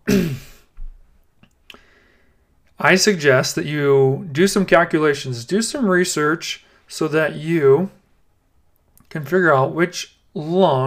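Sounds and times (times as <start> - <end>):
throat clearing: 0.1 - 0.7
speech: 2.8 - 8.0, 9.1 - 10.8.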